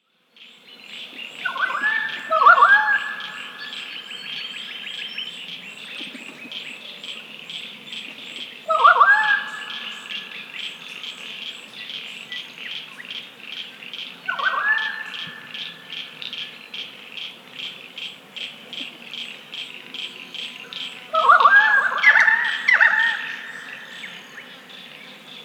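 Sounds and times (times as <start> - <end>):
pied currawong Strepera graculina calling: 1.4 - 5.0, 8.6 - 11.3, 14.0 - 17.4, 20.0 - 24.7.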